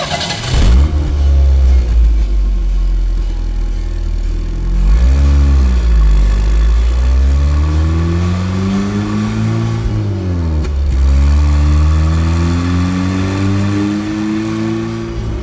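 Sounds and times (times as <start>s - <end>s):
Porsche 911 sports car engine revving: 0.2s - 15.4s.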